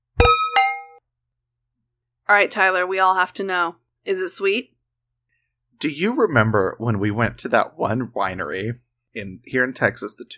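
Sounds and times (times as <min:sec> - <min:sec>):
wine glasses clinking in a toast: 0:00.2 - 0:01.0
speech: 0:02.3 - 0:04.8, 0:05.8 - 0:10.3.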